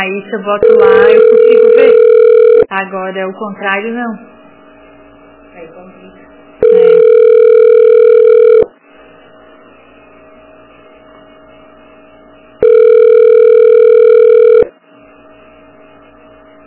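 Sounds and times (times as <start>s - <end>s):
speech: 0.0s - 2.1s, 2.7s - 4.3s
telephone ringback tone of an unanswered call: 0.6s - 2.7s, 6.6s - 8.7s, 12.6s - 14.7s.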